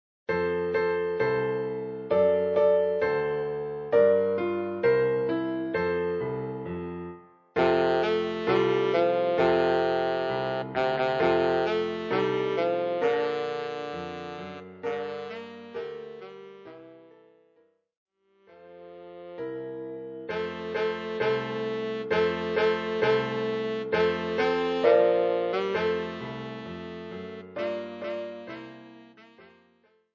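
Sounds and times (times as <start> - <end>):
piano: 0.3 - 17.8, 18.4 - 30.1
tenor saxophone: 7.6 - 17.4, 18.5 - 30.0.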